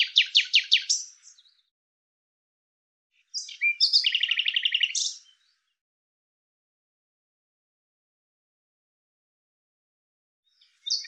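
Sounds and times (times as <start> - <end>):
Common Nightingale singing pulsed phrases and rattling trill: 0.0 - 1.7, 3.2 - 5.7, 10.5 - 11.0.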